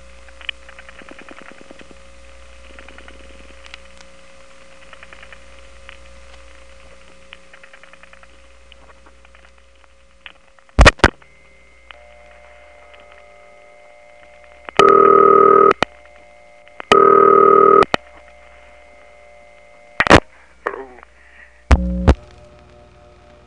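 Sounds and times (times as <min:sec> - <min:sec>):
faint high whine: 0:00.0 - 0:23.4
low hum: 0:00.0 - 0:23.4
long loud tone bursts: 0:10.8 - 0:20.5, 0:21.7 - 0:22.2
electromechanical step-switch telephone dial tone: 0:12.0 - 0:16.2, 0:16.9 - 0:18.6.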